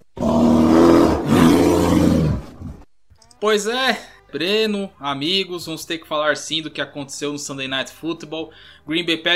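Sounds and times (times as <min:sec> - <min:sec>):
bear roaring: 0:00.2 - 0:02.8
speech: 0:03.4 - 0:09.3.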